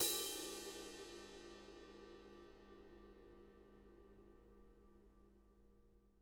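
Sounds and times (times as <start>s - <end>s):
cymbal played with a brush: 0.0s - 3.0s.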